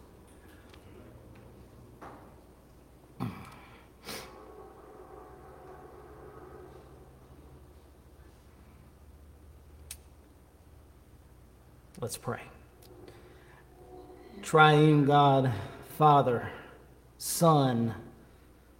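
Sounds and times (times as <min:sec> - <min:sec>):
train rumbling past: 0:04.1 - 0:09.0, 0:12.3 - 0:17.0
speech: 0:12.0 - 0:12.6, 0:14.4 - 0:16.6, 0:17.2 - 0:18.0.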